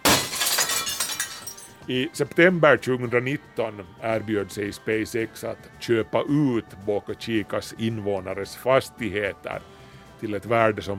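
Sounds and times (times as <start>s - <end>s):
tinkling glass shards falling and bouncing: 0.0s - 1.8s
window glass shattering: 0.0s - 1.8s
speech: 1.9s - 10.9s.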